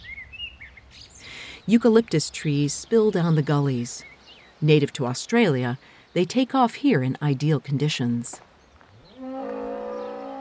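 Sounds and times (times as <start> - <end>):
speech: 1.7 - 8.5
cow mooing with a rough growling note: 9.2 - 10.4.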